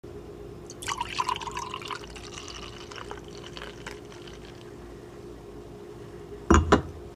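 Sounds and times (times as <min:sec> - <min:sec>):
water pouring: 0:00.7 - 0:04.7.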